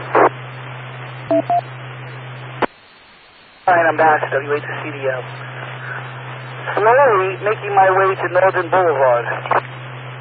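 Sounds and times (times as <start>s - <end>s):
steady hum and hiss: 0.0s - 10.1s
telephone keypad dual-tone dialing beeps: 1.3s - 1.6s
speech: 1.3s - 1.8s, 3.7s - 5.6s, 6.6s - 9.7s.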